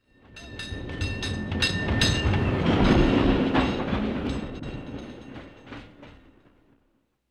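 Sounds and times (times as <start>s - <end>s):
streetcar: 0.0s - 6.8s.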